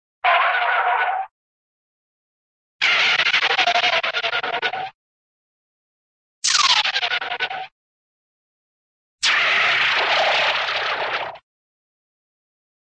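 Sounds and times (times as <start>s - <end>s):
short cartoon skid: 0.2s - 1.3s, 2.8s - 4.9s, 6.4s - 7.7s, 9.2s - 11.4s.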